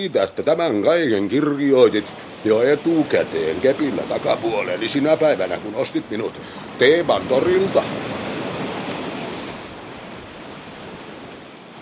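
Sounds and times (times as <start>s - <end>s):
speech: 0.0s - 8.1s
sea waves surging: 0.0s - 11.7s.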